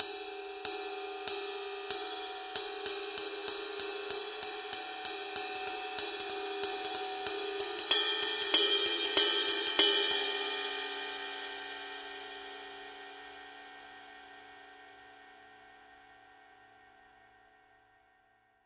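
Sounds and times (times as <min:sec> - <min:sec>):
heavy ride cymbal pattern on a 22-inch ride: 0:00.0 - 0:14.5.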